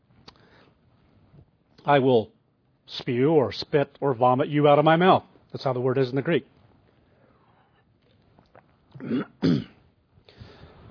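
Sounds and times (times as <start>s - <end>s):
speech: 1.8s - 6.5s
person clearing throat from a tickle in the throat: 9.0s - 9.8s.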